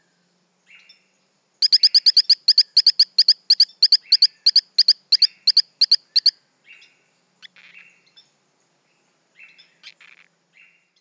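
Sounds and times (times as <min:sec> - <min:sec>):
Torrent frog Hylodes phyllodes chirping: 0:01.6 - 0:06.4, 0:07.4 - 0:07.9, 0:09.8 - 0:10.3.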